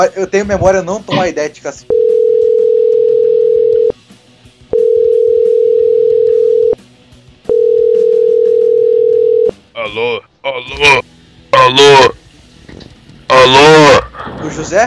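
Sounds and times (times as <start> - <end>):
speech: 0.0 - 2.1, 9.9 - 11.0, 11.7 - 12.2, 14.4 - 14.8
telephone dial tone while placing a call: 2.0 - 3.9, 4.8 - 6.8, 7.5 - 9.5.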